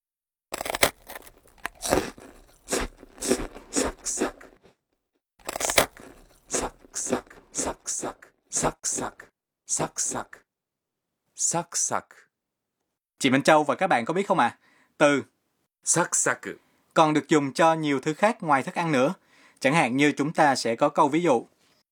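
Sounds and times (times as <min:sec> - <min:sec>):
crunchy biting of crisp brittle food: 0:00.5 - 0:04.7, 0:05.4 - 0:08.8
speech: 0:11.5 - 0:12.2, 0:13.2 - 0:21.6.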